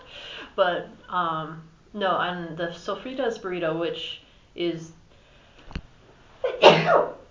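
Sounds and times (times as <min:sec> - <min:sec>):
speech: 0:00.6 - 0:05.0, 0:06.7 - 0:07.2
person sneezing: 0:06.4 - 0:07.2.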